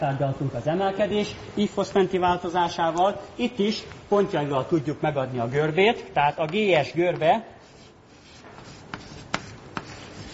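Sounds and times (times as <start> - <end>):
speech: 0.0 - 7.6
handwriting scratching: 6.2 - 10.3.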